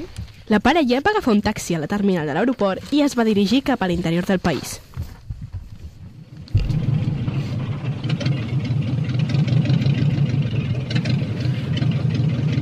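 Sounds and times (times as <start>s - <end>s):
speech: 0.0s - 4.8s
car engine rumbling and roaring: 6.4s - 12.6s.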